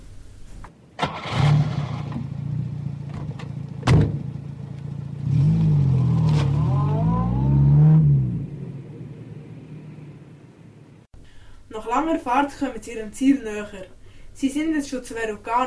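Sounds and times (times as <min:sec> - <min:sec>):
red Mustang car engine starting and revving: 0:01.0 - 0:11.0
speech: 0:11.9 - 0:15.6.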